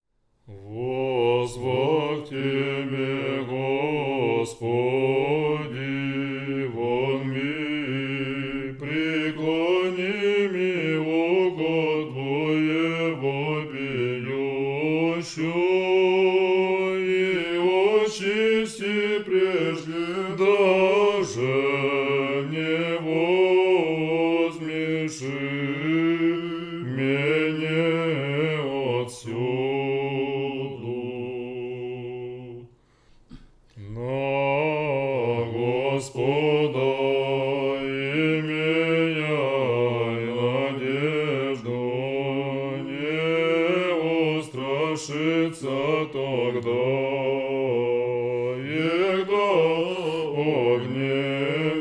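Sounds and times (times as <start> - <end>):
second antiphon chanted in tone 8: 0.5 - 32.7, 33.8 - 51.7.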